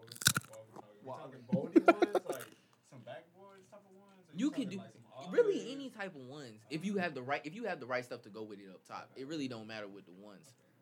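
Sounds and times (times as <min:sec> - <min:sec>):
crunch of biting into crisp food: 0:00.0 - 0:00.6, 0:02.2 - 0:02.6
chewing: 0:00.0 - 0:00.9, 0:02.1 - 0:02.6
speech: 0:01.1 - 0:02.1, 0:03.6 - 0:10.7
laughter: 0:01.5 - 0:02.5.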